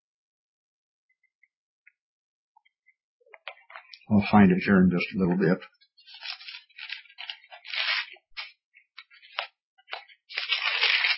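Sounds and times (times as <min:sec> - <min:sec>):
speech: 0:04.1 - 0:05.8
thin paper pages being turned and rustled: 0:05.4 - 0:11.1.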